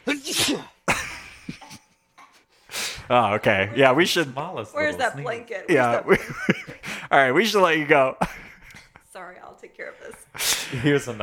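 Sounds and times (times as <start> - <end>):
person sneezing forcefully: 0.1 - 0.8
laughter: 0.9 - 2.4, 5.0 - 7.1, 8.1 - 9.1, 9.9 - 11.2
trailing sniffs and breaths: 2.4 - 3.1
speech: 3.1 - 8.4, 9.7 - 11.2.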